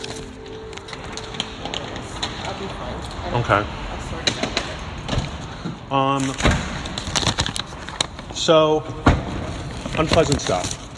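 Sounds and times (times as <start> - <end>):
sheet of paper being unfolded with crinkles and crackles: 0.0 - 2.4, 6.2 - 8.6, 9.4 - 10.9
speech: 3.4 - 3.8, 5.9 - 6.6, 8.4 - 9.1, 10.0 - 10.8.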